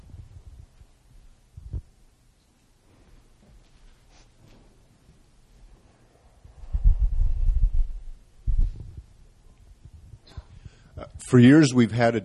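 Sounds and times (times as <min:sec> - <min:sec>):
person's low heartbeat: 0:01.5 - 0:02.0, 0:06.5 - 0:10.8
speech: 0:11.2 - 0:12.2.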